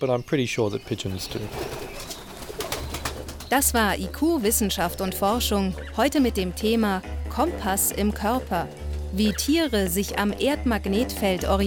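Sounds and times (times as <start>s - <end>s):
speech: 0.0s - 1.8s, 3.5s - 11.6s
pigeons cooing: 0.8s - 3.9s.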